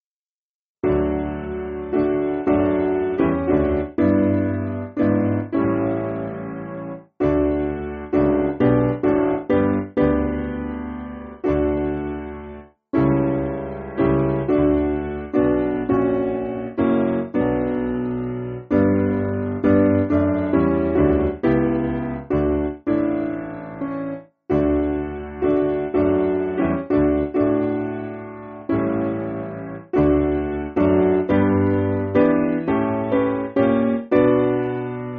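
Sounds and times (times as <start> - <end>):
simple piano piece: 0.8 - 35.1.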